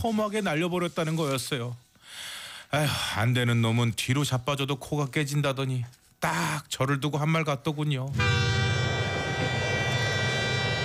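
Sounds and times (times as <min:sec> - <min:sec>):
speech: 0:00.0 - 0:08.6
distant train passing: 0:08.2 - 0:10.8.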